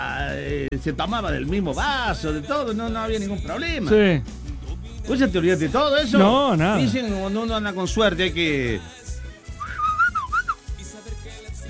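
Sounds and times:
speech: 0:00.4 - 0:04.4, 0:05.1 - 0:09.0
person whistling a short melody: 0:09.5 - 0:10.7.

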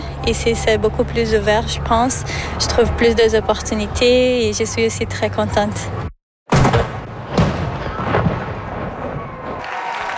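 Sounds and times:
speech: 0:00.2 - 0:06.1
cannon blasts from a gun salute outdoors: 0:06.5 - 0:09.6.

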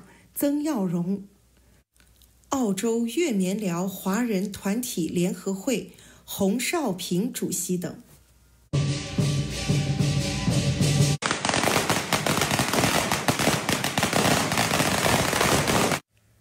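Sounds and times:
speech: 0:00.4 - 0:01.4, 0:02.5 - 0:08.1
cymbals: 0:08.8 - 0:11.2
festive drumming: 0:08.8 - 0:15.9
long string of firecrackers exploding: 0:11.2 - 0:16.1.

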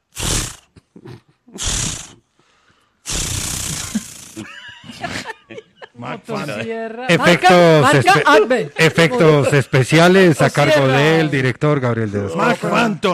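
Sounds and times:
voice imitating a chainsaw starting up and revving: 0:00.1 - 0:00.7, 0:01.6 - 0:02.2, 0:03.1 - 0:04.4
laughter: 0:03.9 - 0:10.0
speech: 0:06.0 - 0:13.1.

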